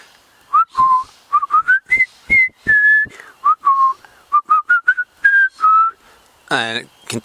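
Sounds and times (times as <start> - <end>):
person whistling a jaunty march tune: 0.5 - 6.0
speech: 6.5 - 7.2.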